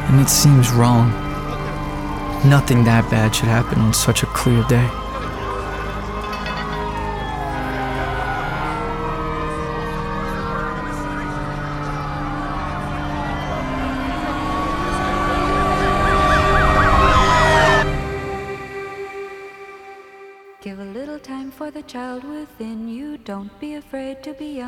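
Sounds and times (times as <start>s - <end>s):
several emergency sirens wailing: 0.0s - 23.1s
speech: 0.1s - 1.3s, 2.4s - 5.0s
faint scattered sounds: 5.1s - 7.4s.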